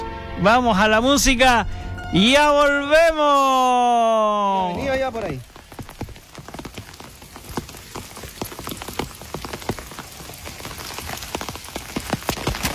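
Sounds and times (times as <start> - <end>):
speech: 0.4 - 5.5
steady rain pattering onto a hard surface: 4.6 - 12.7.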